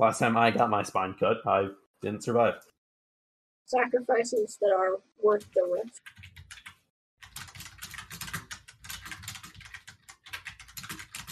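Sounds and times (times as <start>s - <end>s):
speech: 0.0s - 2.7s, 3.7s - 6.4s
typing on a keyboard: 5.4s - 11.3s.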